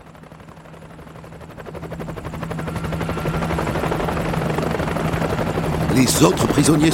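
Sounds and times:
helicopter droning engine hum: 0.0s - 6.9s
helicopter rotor thumping: 0.1s - 6.9s
speech: 6.0s - 6.9s.

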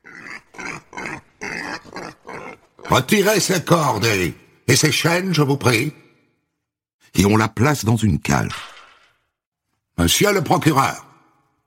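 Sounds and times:
sow grunting harshly while dragged by men: 0.0s - 3.6s
speech: 2.9s - 6.0s, 7.1s - 8.7s, 10.0s - 11.1s.

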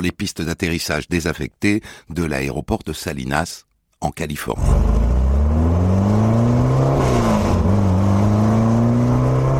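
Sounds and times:
speech: 0.0s - 5.9s
race car engine revving: 4.6s - 9.5s.

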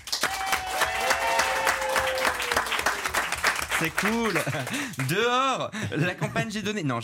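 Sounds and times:
studio audience applause: 0.0s - 5.6s
speech: 3.8s - 7.0s
laughter: 4.2s - 6.7s.

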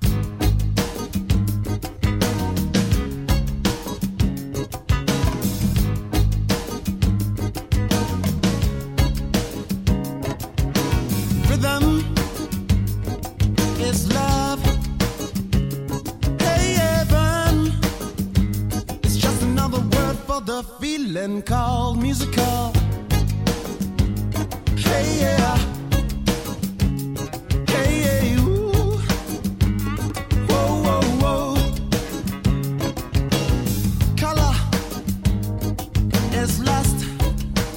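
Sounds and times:
punchy, tightly rhythmic drums: 0.0s - 20.2s, 22.4s - 37.7s
funk-soul song with vocals: 0.0s - 37.7s
singer's voice riding over the band: 11.4s - 12.6s, 13.6s - 15.2s, 16.4s - 18.1s, 19.0s - 23.0s, 24.7s - 26.5s, 27.5s - 29.4s, 30.0s - 32.3s, 34.1s - 35.1s, 36.2s - 37.7s
speech: 21.2s - 22.8s.

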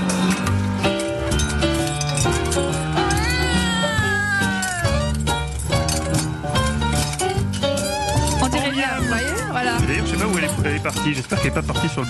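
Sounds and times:
loud busy instrumental music: 0.0s - 12.0s
cat meowing: 3.0s - 5.2s, 8.0s - 9.9s
speech: 10.9s - 12.0s.

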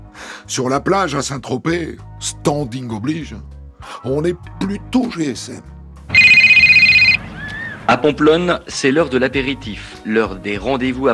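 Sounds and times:
speech: 0.5s - 6.2s, 7.9s - 11.1s
mobile phone ringing inside a beach bag on a beach: 6.1s - 7.2s.

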